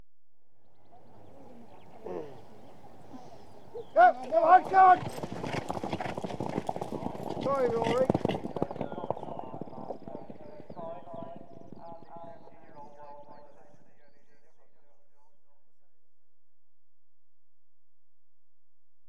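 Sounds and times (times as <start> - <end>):
point to point horse race starting: 0.8 - 13.8.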